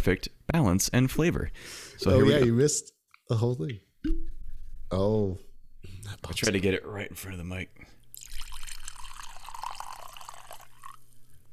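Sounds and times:
speech: 0.0s - 3.8s, 4.9s - 8.0s
whiskey being poured into a glass: 8.1s - 11.5s.

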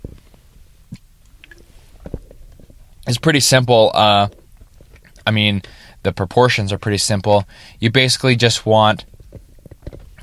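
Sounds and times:
sipping water: 0.0s - 6.1s
wet mouth noises: 0.9s - 3.1s, 4.3s - 5.3s
speech: 3.1s - 4.4s, 5.3s - 9.1s.

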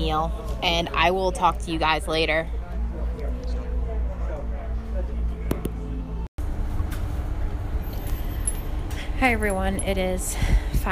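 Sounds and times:
faint indistinct voices: 0.0s - 6.3s
speech: 0.1s - 2.6s, 9.2s - 10.9s
road rumble inside a moving city bus: 2.5s - 10.9s
moving city bus engine drone: 2.7s - 9.3s.

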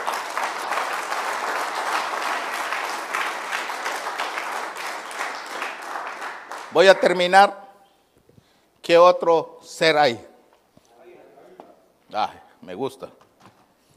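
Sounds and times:
congregation applause: 0.0s - 7.2s
speech: 6.8s - 7.6s, 8.8s - 10.3s, 12.1s - 13.2s.

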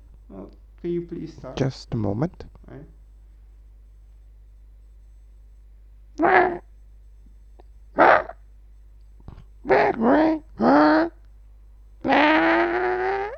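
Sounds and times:
speech: 0.3s - 3.0s, 6.2s - 6.6s, 9.7s - 10.4s
voice imitating a dinosaur call with hooting cries: 6.2s - 6.7s, 9.7s - 11.2s, 12.0s - 13.3s.

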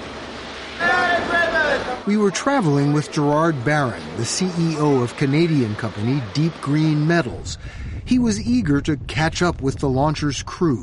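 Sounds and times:
rough open-sea waves and swell: 0.0s - 8.1s
wind at sea: 0.0s - 10.8s
speech: 1.9s - 10.8s.

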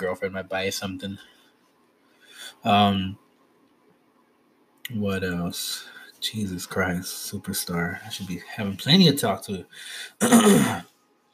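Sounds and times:
speech: 0.0s - 1.4s, 2.5s - 3.2s, 4.9s - 10.9s
person clearing throat: 10.2s - 10.9s.

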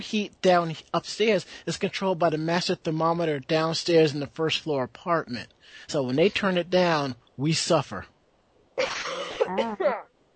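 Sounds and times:
speech: 0.0s - 8.1s, 8.8s - 10.1s
harsh throaty cough: 8.8s - 10.0s.

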